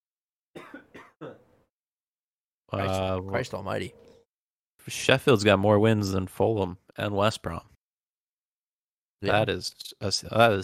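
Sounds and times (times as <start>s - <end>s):
harsh coughs: 0.5s - 1.6s
speech: 2.7s - 4.1s, 4.8s - 7.7s, 9.2s - 10.6s.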